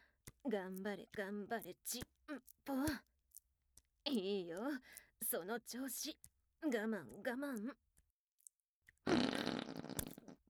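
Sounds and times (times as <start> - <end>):
faint clicks: 0.0 - 9.0
sharp tick: 0.2 - 7.8
speech: 0.4 - 3.1, 4.1 - 7.8
fart: 9.1 - 10.4.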